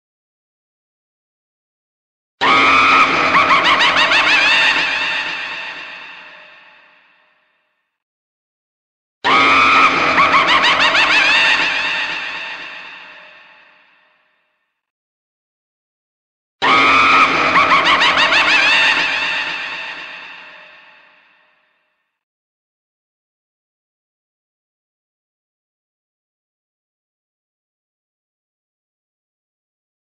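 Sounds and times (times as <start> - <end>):
scary laugh: 2.4 - 7.1, 9.3 - 13.9, 16.6 - 21.6.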